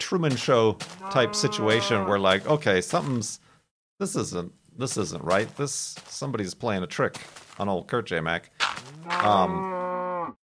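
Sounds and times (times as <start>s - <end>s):
speech: 0.1s - 3.4s, 4.0s - 9.8s
cow mooing: 1.0s - 2.2s, 9.0s - 10.4s.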